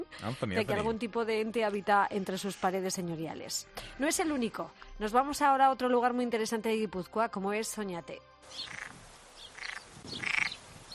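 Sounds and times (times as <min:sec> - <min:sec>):
speech: 0:00.1 - 0:08.9
frogs croaking in Oñati, Gipuzkoa: 0:08.5 - 0:10.9.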